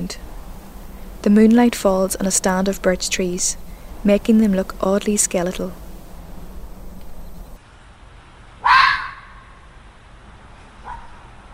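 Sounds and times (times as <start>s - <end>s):
speech: 0.0s - 0.3s, 1.2s - 5.8s
red fox vixen screaming at night: 8.6s - 9.5s.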